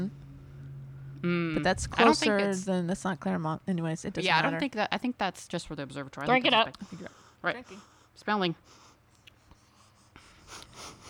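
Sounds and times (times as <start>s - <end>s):
speech: 1.2s - 8.8s
short nasal sniffs at the microphone: 8.6s - 11.0s.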